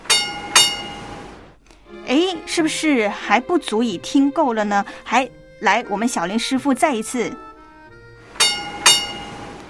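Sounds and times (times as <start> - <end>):
tram bell ringing ding-ding: 0.0 - 1.2, 8.4 - 9.5
speech: 2.1 - 7.5.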